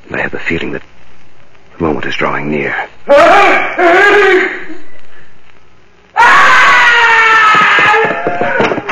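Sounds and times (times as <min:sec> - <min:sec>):
speech: 0:00.3 - 0:01.0, 0:01.8 - 0:04.7
loud shrill scream: 0:03.1 - 0:04.7, 0:06.1 - 0:08.8.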